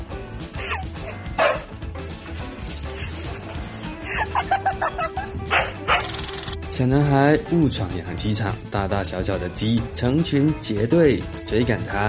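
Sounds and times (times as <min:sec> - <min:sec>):
husky barking at a cat: 0:01.3 - 0:01.7, 0:05.5 - 0:06.2
laughter: 0:03.1 - 0:05.5
speech: 0:06.8 - 0:12.0.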